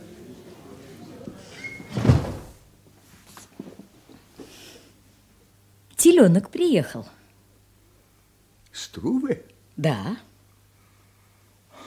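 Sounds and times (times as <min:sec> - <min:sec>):
soft murmuring voices indoors: 0:00.0 - 0:01.9
door creaking: 0:01.5 - 0:02.5
door swinging shut with a solid thud: 0:01.9 - 0:02.6
speech: 0:06.1 - 0:07.2, 0:09.0 - 0:10.3.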